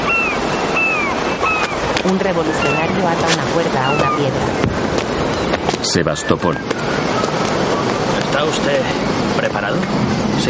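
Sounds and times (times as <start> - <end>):
gull cries above the surf: 0.0 - 4.4, 5.4 - 8.0
sea waves rushing: 0.0 - 10.4
speech: 2.0 - 5.1, 5.8 - 7.3, 8.3 - 10.4.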